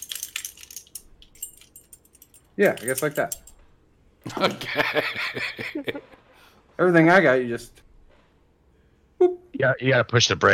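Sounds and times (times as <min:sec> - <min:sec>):
bunch of keys jangling as handled: 0:00.0 - 0:03.7
speech: 0:02.6 - 0:03.4, 0:04.4 - 0:06.2, 0:06.8 - 0:07.8, 0:09.6 - 0:10.5
laughter: 0:04.2 - 0:06.2.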